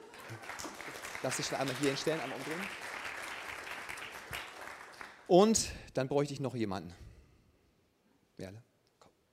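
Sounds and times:
audience applause: 0:00.0 - 0:05.3
speech: 0:01.2 - 0:02.9, 0:05.3 - 0:07.0, 0:08.4 - 0:08.7.

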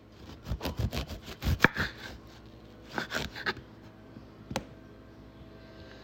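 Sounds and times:
knife cutting up a lime: 0:00.2 - 0:02.2, 0:02.9 - 0:03.6.

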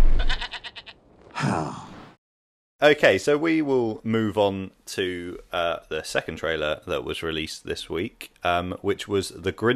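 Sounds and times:
goat bleating: 0:00.2 - 0:01.0
speech: 0:02.8 - 0:09.7.

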